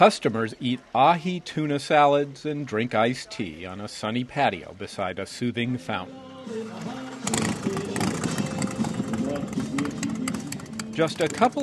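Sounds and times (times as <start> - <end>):
speech: 0.0 - 7.1, 11.0 - 11.6
several motorcycle engines idling at an Old West eatery in Cave Creek: 6.4 - 11.6.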